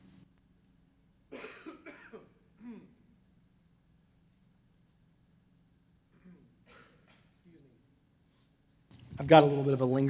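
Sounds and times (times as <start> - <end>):
person coughing: 1.3 - 3.0, 6.2 - 7.4
speech: 9.2 - 10.0.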